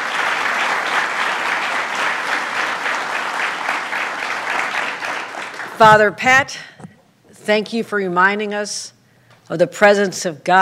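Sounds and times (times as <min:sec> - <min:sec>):
sizable audience applauding the university president: 0:00.0 - 0:05.9
speech: 0:05.8 - 0:06.8, 0:07.4 - 0:10.6.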